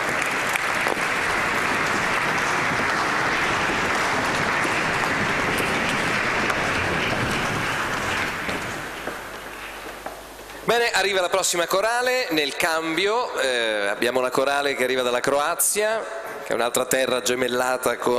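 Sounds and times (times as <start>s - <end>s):
audience applause for a choir: 0.0s - 10.3s
speech: 10.7s - 18.1s.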